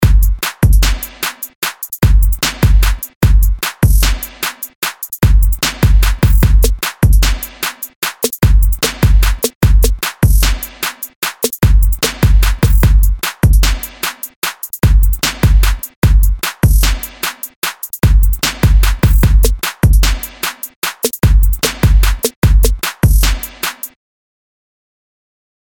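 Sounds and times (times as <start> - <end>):
hip hop drum loop at 150 BPM: 0.0 - 24.0.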